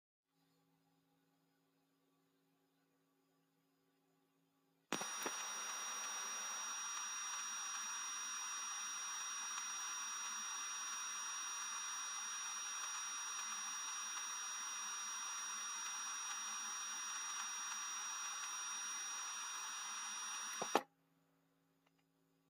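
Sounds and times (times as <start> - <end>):
static fuzz from a damaged delay pedal: 4.9 - 20.8.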